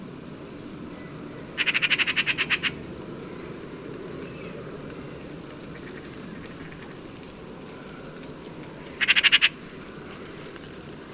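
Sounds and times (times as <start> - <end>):
Eurasian magpie Pica pica rattling chatter: 1.6 - 2.8, 8.9 - 9.6.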